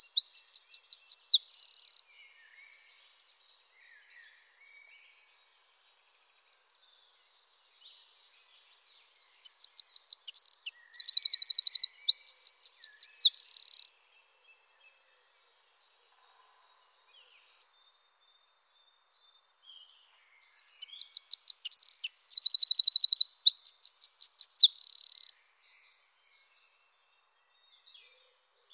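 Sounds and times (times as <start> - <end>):
Eurasian wren song with trills and buzzy ending: 0.0 - 2.1, 8.5 - 14.1, 19.7 - 25.6.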